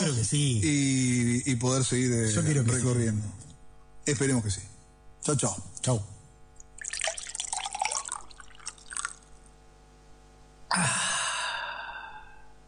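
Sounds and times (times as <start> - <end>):
speech: 0.2 - 6.2, 10.8 - 11.0
water splashing and gurgling into a glass: 6.6 - 9.4.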